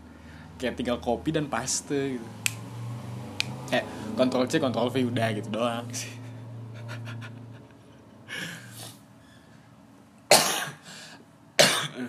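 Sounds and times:
speech: 0:00.6 - 0:02.6, 0:03.7 - 0:06.2
person coughing: 0:10.3 - 0:10.8, 0:11.6 - 0:12.0.

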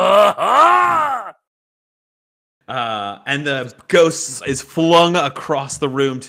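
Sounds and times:
person groaning strained and drawn-out: 0:00.0 - 0:01.4
speech: 0:02.7 - 0:06.2.

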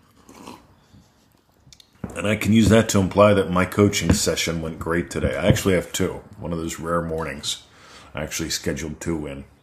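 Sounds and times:
slurping sip of coffee: 0:00.0 - 0:01.2
speech: 0:02.2 - 0:09.6.

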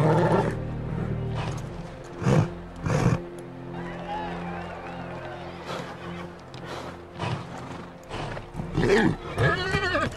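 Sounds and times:
racehorses whinnying and snorting at a starting gate: 0:00.0 - 0:00.6, 0:01.3 - 0:03.3, 0:05.6 - 0:10.1.

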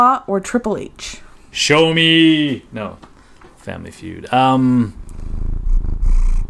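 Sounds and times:
speech: 0:00.0 - 0:05.0
cat purring into the microphone: 0:04.2 - 0:06.4.

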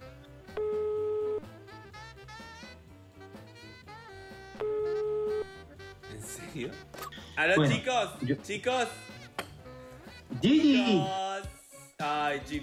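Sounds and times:
busy music: 0:00.0 - 0:12.6
phone call ringing tones: 0:00.5 - 0:01.5, 0:04.6 - 0:05.6
speech: 0:06.6 - 0:09.0, 0:10.4 - 0:11.5, 0:12.3 - 0:12.6.

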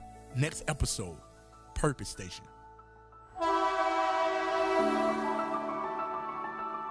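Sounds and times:
speech: 0:00.4 - 0:02.6
loud sustained train horn with shifting chord: 0:03.4 - 0:06.8.

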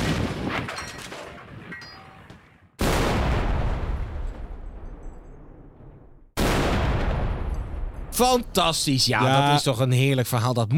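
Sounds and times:
cannon blasts: 0:00.0 - 0:01.7, 0:02.8 - 0:09.0
speech: 0:08.2 - 0:10.7.

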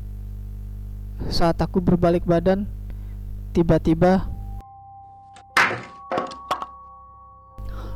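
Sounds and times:
faint steady hum: 0:00.0 - 0:07.9
speech: 0:01.2 - 0:02.8, 0:03.6 - 0:04.3
books falling off a desk: 0:05.6 - 0:06.7.

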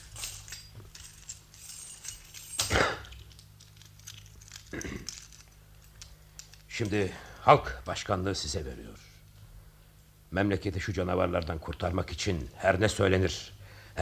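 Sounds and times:
chains jangling while being unlocked with a key: 0:00.0 - 0:07.5
low steady hum: 0:00.0 - 0:14.0
speech: 0:06.8 - 0:09.1, 0:10.3 - 0:14.0.

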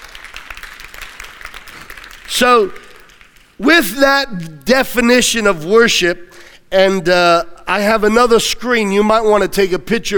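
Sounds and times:
crowd applauding: 0:00.0 - 0:03.6
speech: 0:02.3 - 0:02.8, 0:03.6 - 0:10.1.

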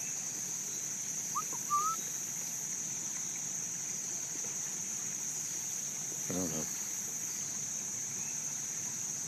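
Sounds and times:
steady outdoor hiss: 0:00.0 - 0:09.2
faint two-note whistled bird call, possibly a whip-poor-will: 0:01.4 - 0:02.0
speech: 0:06.3 - 0:06.8.

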